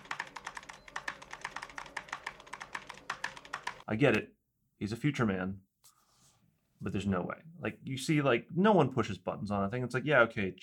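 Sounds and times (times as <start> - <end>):
rapid typing on an old computer keyboard: 0.0 - 3.9
speech: 3.9 - 5.7, 6.8 - 10.6.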